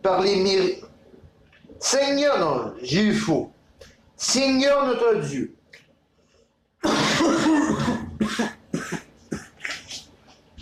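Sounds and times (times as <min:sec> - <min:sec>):
speech: 0:00.0 - 0:00.9, 0:01.8 - 0:05.6
harsh heavy cough: 0:06.8 - 0:10.0
throat clearing: 0:06.8 - 0:10.0.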